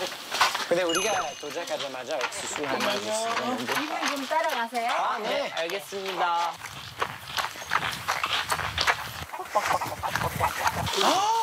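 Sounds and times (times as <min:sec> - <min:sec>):
footsteps: 0:00.0 - 0:11.4
speech: 0:00.7 - 0:06.8, 0:09.6 - 0:10.0, 0:10.8 - 0:11.4
chicken clucking at a corn field: 0:09.2 - 0:11.0.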